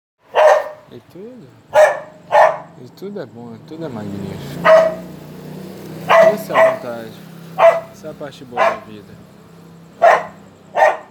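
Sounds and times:
dog barking: 0.2s - 0.9s, 1.7s - 2.8s, 4.6s - 5.2s, 6.0s - 8.9s, 10.0s - 11.0s
speech: 0.9s - 1.9s, 2.8s - 5.0s, 6.3s - 9.3s.

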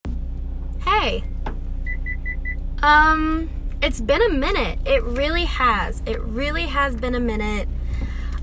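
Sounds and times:
low car engine rumble heard inside a car: 0.0s - 8.4s
speech: 1.0s - 1.4s, 2.8s - 8.0s
short electronic dashboard warning beeps: 1.2s - 2.6s.

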